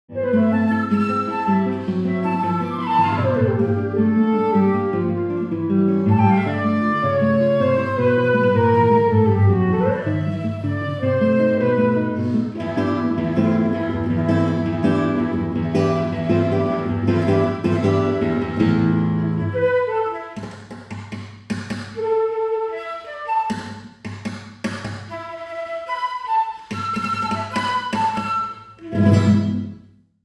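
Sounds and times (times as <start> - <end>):
flute: 0.1 - 20.6, 22.0 - 23.9, 25.0 - 29.8
guitar: 0.1 - 30.0.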